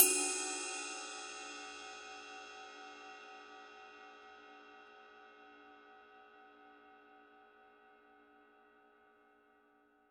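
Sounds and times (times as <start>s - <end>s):
22-inch bronze ride cymbal played on the bell and body: 0.0s - 3.4s.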